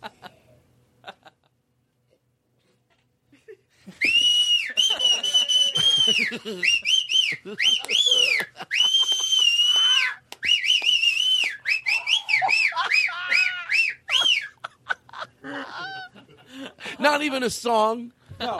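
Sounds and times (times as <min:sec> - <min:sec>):
laughter: 0:00.0 - 0:01.6, 0:03.3 - 0:10.2, 0:11.7 - 0:17.1, 0:18.4 - 0:18.5
person whistling loudly: 0:03.9 - 0:14.6
speech: 0:06.1 - 0:09.1, 0:17.1 - 0:18.5.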